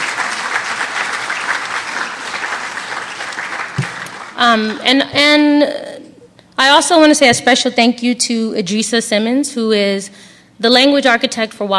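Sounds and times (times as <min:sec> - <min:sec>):
audience round of applause: 0:00.0 - 0:04.5
speech: 0:04.4 - 0:05.8, 0:06.6 - 0:11.7.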